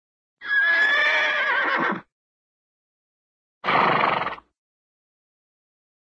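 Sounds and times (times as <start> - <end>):
cartoon horse whinny: 0.4 - 2.1, 3.6 - 4.5.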